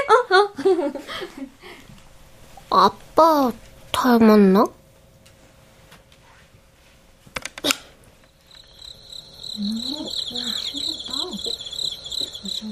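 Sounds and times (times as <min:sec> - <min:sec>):
speech: 0:00.6 - 0:01.8, 0:02.7 - 0:04.8, 0:09.6 - 0:11.6
high-pitched cricket chirping: 0:08.2 - 0:12.7
soft voiced sounds: 0:09.6 - 0:11.6.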